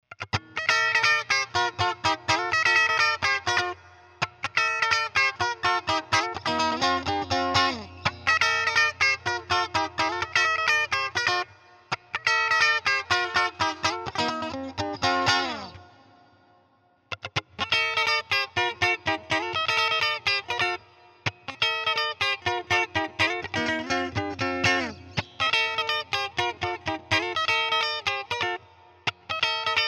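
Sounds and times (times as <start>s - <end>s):
clean electric guitar: 0.1s - 29.8s.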